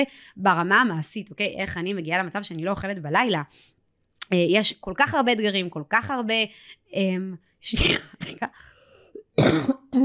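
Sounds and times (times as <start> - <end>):
speech: 0.0 - 8.7, 9.4 - 10.0
person coughing: 9.3 - 9.9
throat clearing: 9.4 - 10.0.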